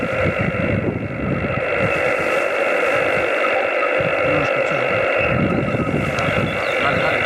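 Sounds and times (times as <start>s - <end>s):
amateur radio transmission static and hiss: 0.0s - 7.2s
voice on amateur radio transmission: 1.9s - 7.2s.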